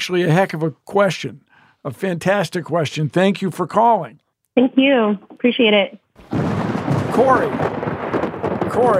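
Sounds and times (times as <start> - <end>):
speech: 0.0 - 6.5, 7.2 - 8.9
rolling thunder sound effect for a lightning round segment: 6.2 - 8.9.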